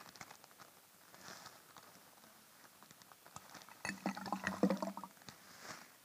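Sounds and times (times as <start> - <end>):
lumps of hard clay dropping into water: 3.7 - 5.1.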